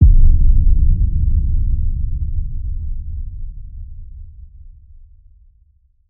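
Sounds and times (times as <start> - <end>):
deep house deep hit effect: 0.0 - 4.7.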